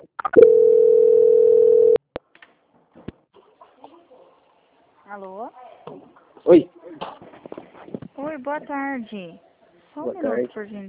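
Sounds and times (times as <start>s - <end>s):
telephone call-transfer tone beep: 0.3s - 2.0s
speech: 5.2s - 5.6s, 6.5s - 6.7s, 8.4s - 10.8s.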